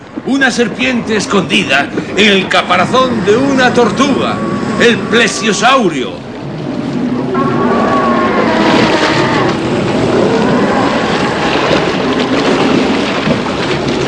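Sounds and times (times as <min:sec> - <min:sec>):
huge waves of water crashing toward a raft: 0:00.0 - 0:14.0
speech: 0:00.2 - 0:06.2.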